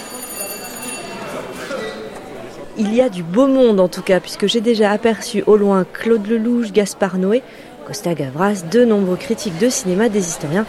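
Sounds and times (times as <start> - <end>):
theatre-style electric bell ringing at a cinema: 0.0 - 1.6
murmur of a crowd talking at a cinema: 0.0 - 10.6
speech: 2.8 - 10.6.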